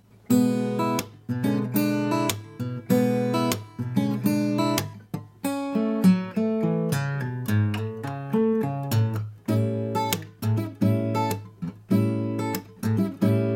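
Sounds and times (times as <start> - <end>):
acoustic guitar lick from E7 chord to A7 chord in A: 0.2 - 13.5.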